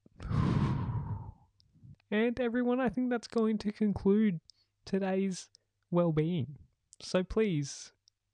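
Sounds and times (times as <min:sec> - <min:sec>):
deep exhale during breathing exercise: 0:00.2 - 0:01.4
soft breath: 0:00.2 - 0:01.4
speech: 0:02.1 - 0:08.0.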